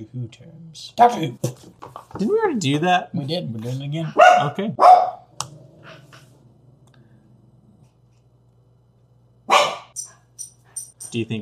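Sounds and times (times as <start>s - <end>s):
speech: 0.0s - 5.1s, 11.1s - 11.4s
low steady hum: 0.0s - 11.4s
dog barking: 4.1s - 5.3s, 9.5s - 10.0s.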